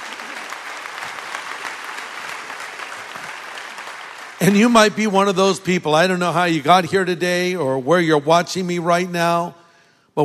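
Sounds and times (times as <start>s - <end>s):
sizable audience clapping: 0.0s - 5.5s
speech: 4.4s - 9.6s.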